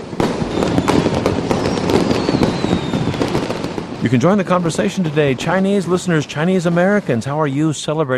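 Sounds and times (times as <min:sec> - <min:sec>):
fireworks celebrating Chinese New Year: 0:00.0 - 0:08.1
thin whistling tone: 0:01.6 - 0:03.3
speech: 0:04.0 - 0:08.1.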